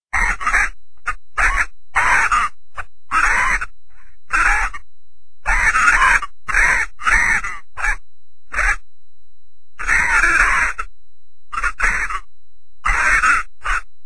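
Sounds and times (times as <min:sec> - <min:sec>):
parrot squawking: 0:00.2 - 0:03.7, 0:04.3 - 0:04.8, 0:05.5 - 0:08.8, 0:09.8 - 0:10.9, 0:11.5 - 0:13.9.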